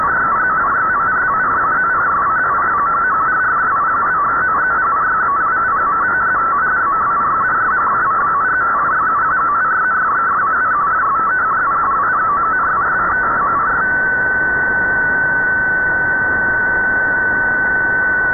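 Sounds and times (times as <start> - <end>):
weird marine signal: 0.0 - 18.3.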